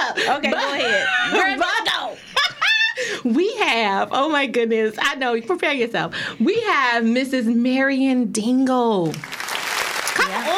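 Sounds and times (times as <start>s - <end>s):
speech: 0.2s - 1.9s, 3.2s - 9.4s
crowd clapping in a dense continuous patter: 9.0s - 10.5s.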